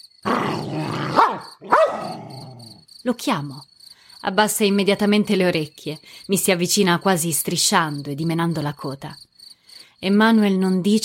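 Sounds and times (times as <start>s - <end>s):
dog snarling and growling aggressively: 0.2s - 2.8s
dog barking sharply and aggressively: 0.3s - 2.6s
speech: 3.0s - 9.3s, 10.0s - 11.0s.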